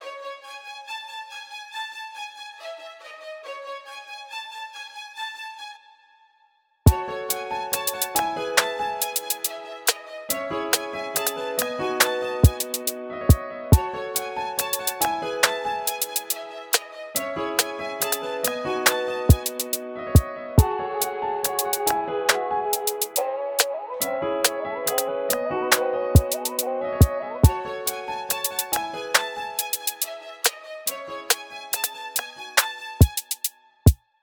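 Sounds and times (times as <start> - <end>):
strings: 0.0 - 34.0
piano: 6.9 - 33.4.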